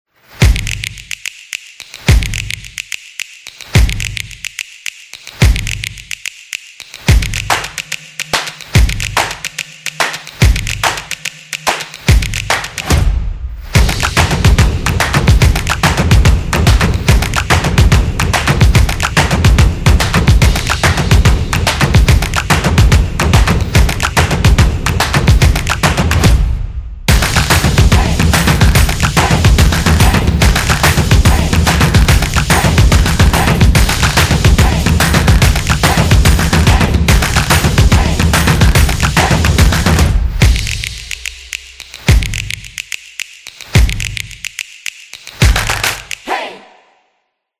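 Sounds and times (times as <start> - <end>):
clapping beat: 0.4 - 13.0, 13.8 - 26.4, 27.1 - 46.3.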